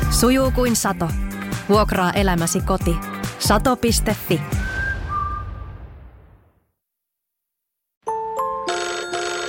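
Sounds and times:
speech: 0.2 - 4.6
phone ringtone for an incoming call: 8.1 - 9.4.

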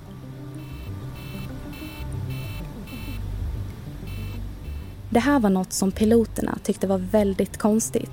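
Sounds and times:
constant low mechanical rumble of a climbing plane: 0.0 - 7.7
cockpit warning alarm pulses as the plane climbs: 0.6 - 3.2, 4.0 - 5.0
speech: 5.1 - 8.1.

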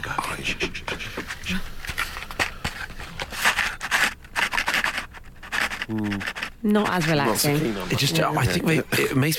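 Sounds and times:
speech: 0.1 - 0.9, 5.9 - 9.3
paper clips rattling and scraping inside a small box: 3.2 - 7.2.

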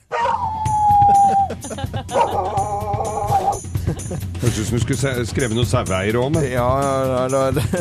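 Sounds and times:
dogs howling sound effect: 0.0 - 3.6
laughter: 1.0 - 4.8, 7.5 - 7.7
speech: 4.4 - 7.7.

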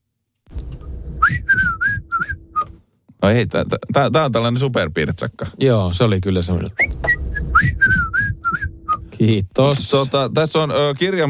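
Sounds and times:
low rumble: 0.5 - 2.6, 6.8 - 9.7
quick human whistle by a listener: 1.2 - 2.7, 6.8 - 9.2
speech: 3.2 - 7.0, 9.2 - 11.2.

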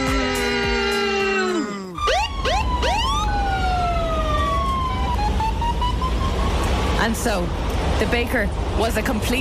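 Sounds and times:
steady rumble of traffic: 0.0 - 9.3
police car siren wailing: 2.0 - 7.0
speech: 7.1 - 9.3.

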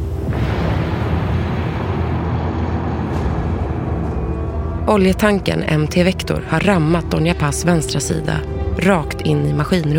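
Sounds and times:
heavy explosion with sustained roaring rumble: 0.0 - 4.8
speech: 4.9 - 9.9.

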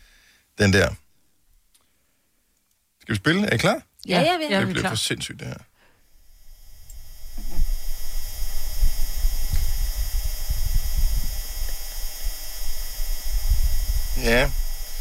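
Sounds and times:
faint steady hiss: 0.0 - 14.9
speech: 0.6 - 1.0, 3.1 - 5.7, 14.2 - 14.9
Martian wind buffeting a microphone: 6.8 - 14.9.

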